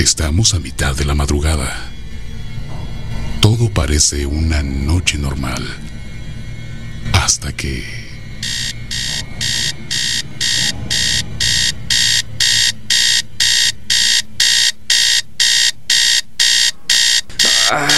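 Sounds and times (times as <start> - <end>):
speech: 0.0 - 2.0, 3.4 - 5.9, 7.1 - 8.6
low rumbling murmur: 0.0 - 13.4
alarm clock beeping: 0.0 - 17.9.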